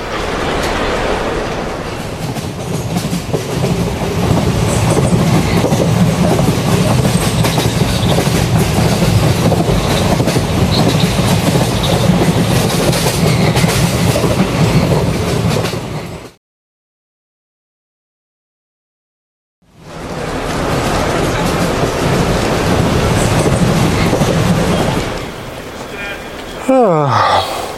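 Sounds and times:
train rolling on rails with clickety-clack: 0:00.0 - 0:16.4, 0:19.6 - 0:27.7
indistinct voices: 0:25.6 - 0:27.7.

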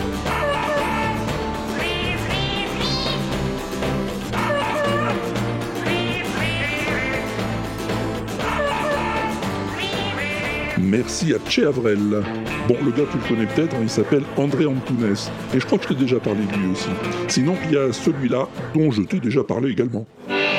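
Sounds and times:
guitar tune: 0:00.0 - 0:18.7, 0:20.1 - 0:20.5
cat calling: 0:00.3 - 0:03.3, 0:04.3 - 0:07.5, 0:08.4 - 0:10.8
duck quacking: 0:00.3 - 0:03.3, 0:04.3 - 0:07.6, 0:08.4 - 0:10.8
speech: 0:11.0 - 0:20.3.

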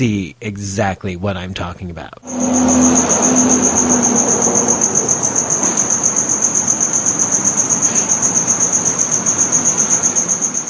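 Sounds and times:
speech: 0:00.0 - 0:05.2
loud piercing cricket chirping: 0:02.1 - 0:10.6.

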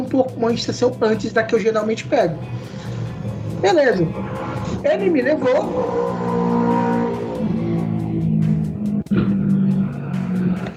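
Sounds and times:
car engine revving: 0:00.0 - 0:10.7
speech: 0:00.1 - 0:02.9, 0:03.6 - 0:06.4.

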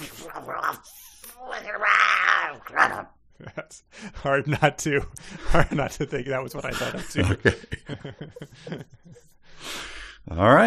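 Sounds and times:
person imitating dogs growling and snarling: 0:00.0 - 0:03.2
speech: 0:00.4 - 0:10.6
laughter: 0:03.4 - 0:09.4.

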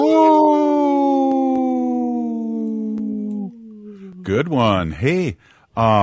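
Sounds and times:
person imitating a wolf howl: 0:00.0 - 0:04.8
speech: 0:04.3 - 0:06.0.

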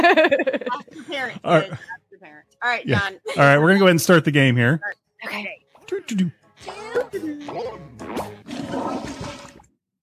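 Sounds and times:
laughter: 0:00.0 - 0:02.0, 0:02.9 - 0:03.8
speech: 0:00.1 - 0:01.9, 0:02.6 - 0:09.0
person vocally imitating a toilet flush with gurgling and whoosh: 0:06.7 - 0:09.6.

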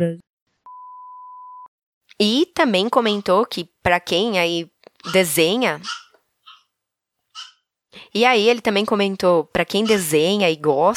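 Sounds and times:
speech: 0:00.0 - 0:00.3, 0:02.2 - 0:06.0, 0:08.0 - 0:10.9
dog barking in short sharp yaps: 0:05.8 - 0:06.7, 0:07.4 - 0:07.6.

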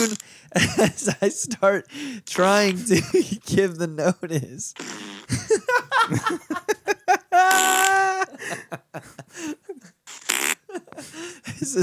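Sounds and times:
people laughing: 0:00.0 - 0:01.8, 0:02.6 - 0:03.4, 0:05.3 - 0:09.9, 0:10.7 - 0:11.8
speech: 0:00.0 - 0:06.7, 0:11.6 - 0:11.8
loud buzzy fart: 0:04.8 - 0:05.4, 0:07.5 - 0:08.0, 0:10.1 - 0:10.6.

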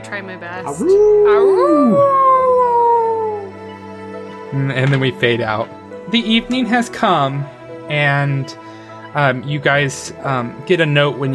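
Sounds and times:
speech: 0:00.0 - 0:02.3, 0:04.5 - 0:11.3
man imitating a wolf howl: 0:00.7 - 0:03.6.

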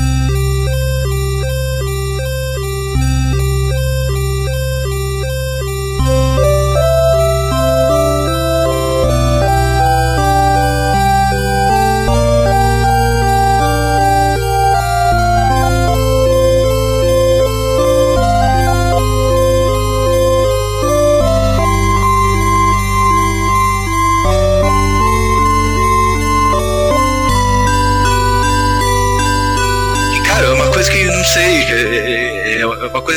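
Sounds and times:
melodic instrumental video game opening theme with arpeggios and bass: 0:00.0 - 0:33.1.

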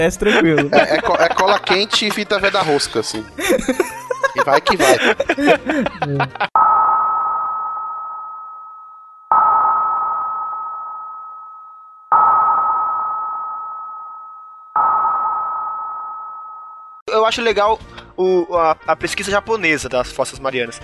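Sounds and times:
laughter: 0:00.0 - 0:06.6
speech: 0:00.0 - 0:06.6, 0:17.3 - 0:20.8
sonar pings: 0:06.6 - 0:17.0.

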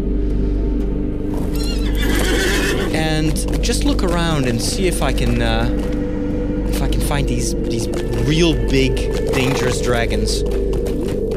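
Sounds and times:
horse hooves clip-clopping: 0:00.8 - 0:11.3
horse neighing: 0:01.4 - 0:03.0
speech: 0:03.2 - 0:06.0, 0:06.9 - 0:10.7.

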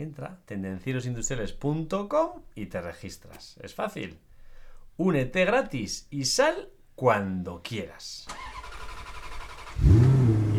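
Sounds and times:
speech: 0:00.0 - 0:04.3, 0:05.0 - 0:08.5
car engine starting and revving: 0:08.3 - 0:10.5.

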